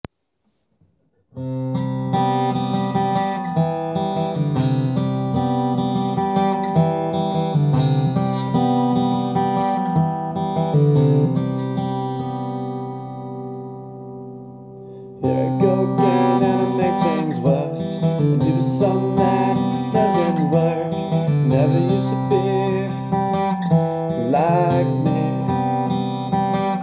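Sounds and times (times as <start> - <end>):
guitar: 0.8 - 26.8
person singing: 15.2 - 23.6, 24.2 - 26.3.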